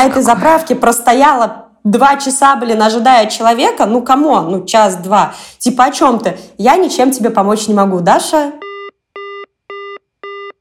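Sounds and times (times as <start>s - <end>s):
speech: 0.0s - 8.6s
telephone busy tone after the line drops: 8.6s - 10.6s.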